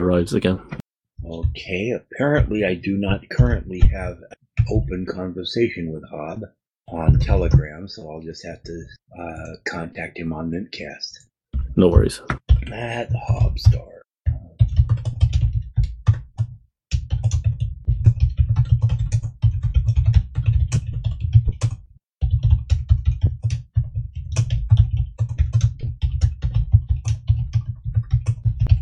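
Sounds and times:
speech: 0:00.0 - 0:14.4
rapid forceful typing on a computer keyboard: 0:14.6 - 0:28.8.

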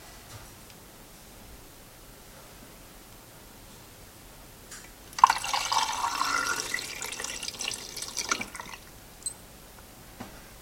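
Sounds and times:
faint drips: 0:05.2 - 0:08.9
photographic developer poured into a film processing tank: 0:05.2 - 0:08.9.

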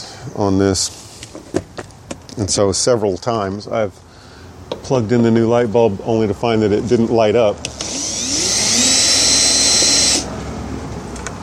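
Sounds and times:
speech: 0:00.2 - 0:01.6, 0:02.4 - 0:04.1, 0:04.8 - 0:07.8
power screwdriver whirring while removing screws from a Honda light housing: 0:07.6 - 0:10.3.

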